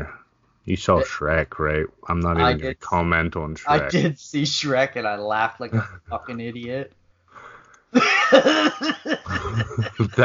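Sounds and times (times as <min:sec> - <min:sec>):
speech: 0:00.0 - 0:07.0, 0:07.9 - 0:10.2
person gagging and laughing: 0:08.0 - 0:10.2.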